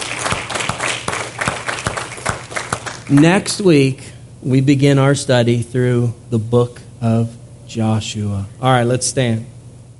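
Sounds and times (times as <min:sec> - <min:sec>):
audience applause at the close of a Bible study: 0:00.0 - 0:03.4
speech: 0:03.1 - 0:09.5.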